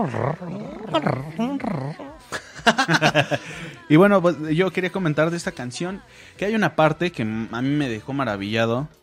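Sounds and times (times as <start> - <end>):
person imitating a cat's purr: 0.0 - 2.2
speech: 0.0 - 9.0
laughter: 0.7 - 3.8.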